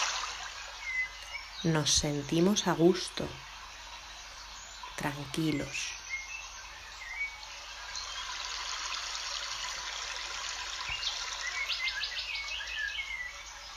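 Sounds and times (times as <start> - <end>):
birds singing and chirping: 0.0 - 13.7
steady hiss: 0.0 - 13.7
speech: 1.6 - 3.5, 5.0 - 6.0.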